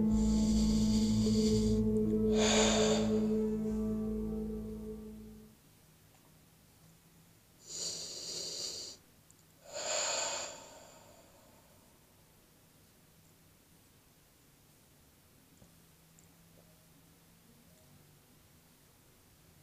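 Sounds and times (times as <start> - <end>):
deep breathing during a guided chakra meditation before sleep: 0.0 - 4.4, 9.6 - 12.0
low sustained drone: 0.0 - 5.5.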